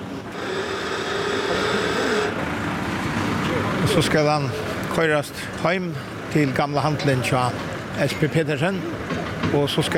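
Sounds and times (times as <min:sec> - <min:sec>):
heavy truck engine idling and running: 0:00.0 - 0:06.8
speech: 0:03.9 - 0:09.9.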